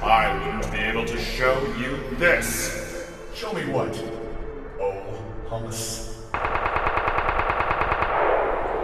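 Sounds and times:
speech: 0.2s - 6.6s
rapid automatic gunfire: 6.3s - 8.7s.

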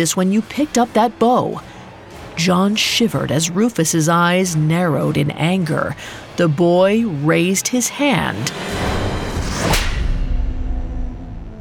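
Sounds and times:
speech: 0.0s - 1.8s, 2.4s - 9.0s
sharp loud slap: 9.4s - 10.4s.

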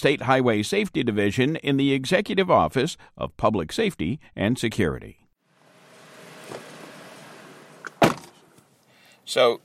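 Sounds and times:
speech: 0.0s - 5.2s, 9.3s - 9.6s
car interior hum during a drive: 5.6s - 8.6s
sharp solid thunk: 7.8s - 8.4s.

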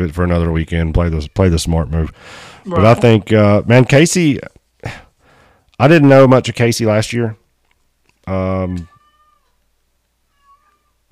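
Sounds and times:
speech: 0.0s - 5.0s, 5.8s - 7.4s, 8.3s - 8.9s
domestic cat meowing: 8.7s - 9.6s, 10.3s - 11.0s.

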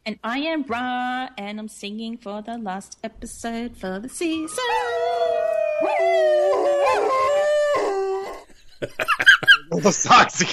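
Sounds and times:
speech: 0.1s - 7.4s, 8.8s - 10.5s
several dogs howling: 4.4s - 8.4s
laughter: 8.5s - 10.5s.

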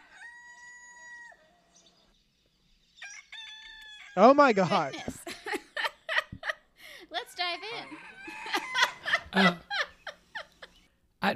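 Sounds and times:
rooster crowing on a farm: 0.0s - 1.8s, 3.0s - 4.9s, 7.2s - 9.9s
speech: 4.2s - 5.2s, 9.4s - 9.6s
laughter: 4.6s - 6.6s, 7.7s - 10.8s.

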